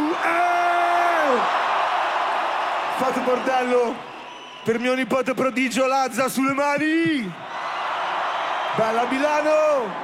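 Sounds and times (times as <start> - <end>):
crowd at a show in Milan cheering and whooping: 0.0 - 5.0, 7.4 - 10.0
crowd shouting and clapping: 0.0 - 10.0
speech: 3.0 - 7.5, 8.8 - 10.0.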